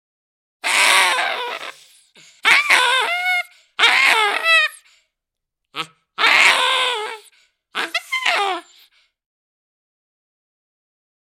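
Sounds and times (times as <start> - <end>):
baboon loud harsh calls with falling harmonic tones: 0.6 - 4.8, 5.8 - 8.8.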